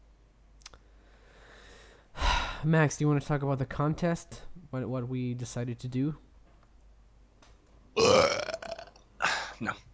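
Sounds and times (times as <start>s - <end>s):
speech: 2.6s - 6.2s, 9.6s - 9.9s
loud gurgling burp: 8.0s - 9.4s.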